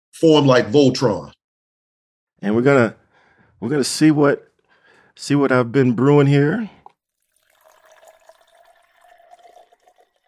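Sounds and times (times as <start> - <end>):
speech: 0.2 - 1.4, 2.4 - 3.0, 3.6 - 4.5, 5.2 - 6.8
liquid pouring into a glass: 6.8 - 10.2.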